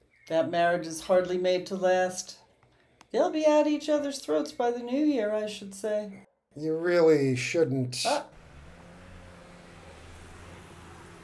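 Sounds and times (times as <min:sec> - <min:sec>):
speech: 0:00.3 - 0:02.4, 0:03.1 - 0:08.3
road noise: 0:08.1 - 0:11.2
moving truck engine rumbling: 0:08.3 - 0:11.2.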